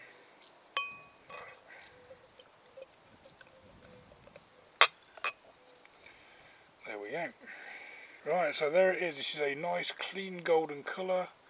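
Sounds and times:
beer glass holding a golden APA clinking: 0:00.8 - 0:01.6
speech: 0:08.2 - 0:11.4.

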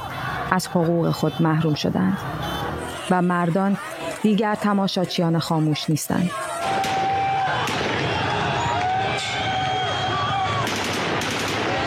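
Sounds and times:
dense noisy crowd shouting outdoors: 0:00.0 - 0:11.8
speech: 0:00.5 - 0:02.4, 0:03.1 - 0:06.9
gunshots at a night protest: 0:06.6 - 0:08.4, 0:10.5 - 0:11.8.

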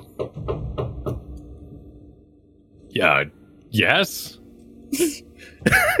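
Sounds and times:
firm knocking on a door: 0:00.1 - 0:01.3
speech: 0:00.2 - 0:00.8, 0:03.0 - 0:05.9.

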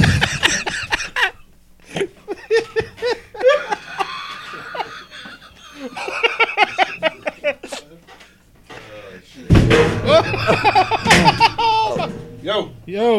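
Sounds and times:
people laughing: 0:00.0 - 0:08.1, 0:09.8 - 0:12.2
thud and clatter of someone falling off a chair: 0:09.5 - 0:12.8.

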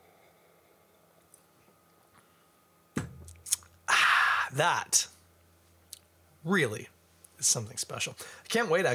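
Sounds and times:
person sipping a drink: 0:03.4 - 0:03.8
speech: 0:04.5 - 0:05.2, 0:06.4 - 0:08.9.

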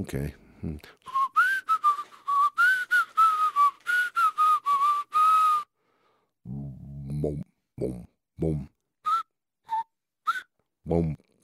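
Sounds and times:
speech: 0:00.0 - 0:01.2, 0:07.2 - 0:08.7, 0:10.9 - 0:11.2
whistle blown in short tuneful notes: 0:01.1 - 0:05.7, 0:09.1 - 0:10.5.

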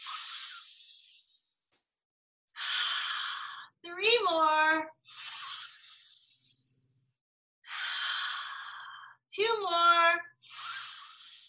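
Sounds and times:
deep meditative breathing during a guided group meditation: 0:00.0 - 0:01.6, 0:02.5 - 0:03.8, 0:05.0 - 0:06.9, 0:07.6 - 0:09.3, 0:10.4 - 0:11.4
speech: 0:03.9 - 0:05.2.

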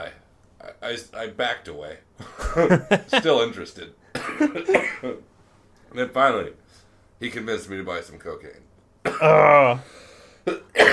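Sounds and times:
speech: 0:00.9 - 0:05.3, 0:05.9 - 0:10.9
laughter: 0:02.2 - 0:03.4
person coughing from a throat dried out by vaping: 0:04.1 - 0:05.2, 0:09.0 - 0:09.6, 0:10.5 - 0:10.9
person clearing throat dried out by vaping: 0:04.2 - 0:05.2, 0:09.0 - 0:09.8, 0:10.5 - 0:10.9.

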